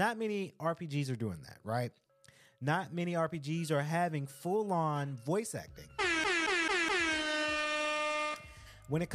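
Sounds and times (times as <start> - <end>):
speech: 0.0 - 2.0, 2.6 - 6.0, 8.9 - 9.1
loud blaring air horn blasts: 6.0 - 8.6.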